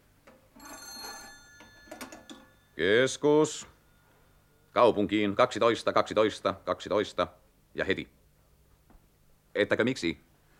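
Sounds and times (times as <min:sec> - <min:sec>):
telephone bell ringing: 0:00.6 - 0:04.6
speech: 0:02.8 - 0:03.8, 0:04.8 - 0:08.2, 0:09.6 - 0:10.3.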